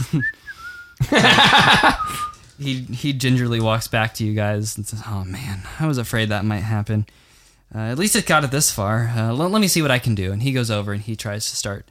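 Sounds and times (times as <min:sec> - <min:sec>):
person whistling: 0:00.0 - 0:01.0, 0:01.8 - 0:02.4
speech: 0:00.0 - 0:11.8
laughter: 0:01.0 - 0:02.2.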